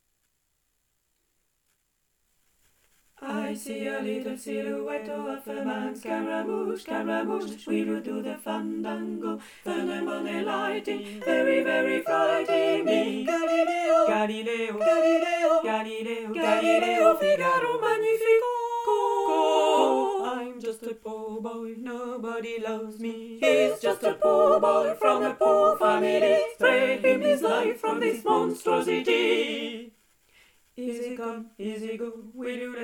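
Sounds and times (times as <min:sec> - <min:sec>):
tutti ensemble playing a chorale: 0:03.2 - 0:20.5, 0:21.1 - 0:29.9.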